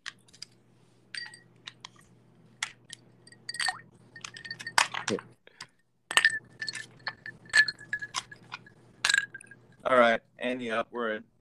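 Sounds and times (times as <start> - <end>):
low steady hum: 0.0 - 11.3
ice cubes clinking against a glass: 2.9 - 5.2, 6.1 - 9.6
speech: 5.1 - 5.3, 9.9 - 11.3.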